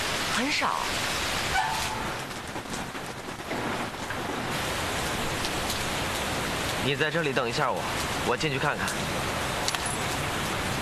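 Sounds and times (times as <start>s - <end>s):
steady dense rain falling during sunshine: 0.0s - 10.7s
speech: 0.4s - 1.4s, 6.8s - 9.4s.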